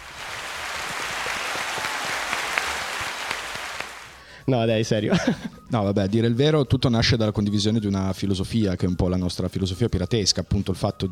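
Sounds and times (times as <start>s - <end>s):
audience applause: 0.0s - 4.3s
speech: 4.5s - 11.0s
laughter: 5.1s - 5.7s.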